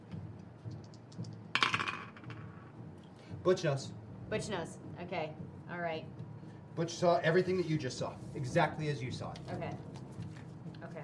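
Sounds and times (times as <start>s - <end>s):
two dice being rolled: 0.8s - 2.7s
speech: 3.4s - 6.2s, 6.8s - 9.9s.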